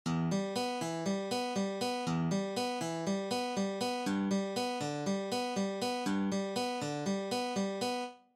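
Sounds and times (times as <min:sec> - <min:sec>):
guitar fingerpicking: 0:00.1 - 0:08.1.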